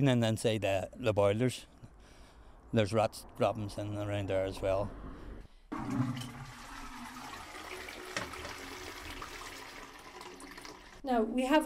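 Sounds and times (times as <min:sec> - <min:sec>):
speech: 0:00.0 - 0:01.7, 0:02.7 - 0:05.0, 0:05.8 - 0:06.2, 0:11.0 - 0:11.6
toilet flushing: 0:05.7 - 0:11.0
toilet bowl draining and refilling with a churning gurgle: 0:05.8 - 0:11.0.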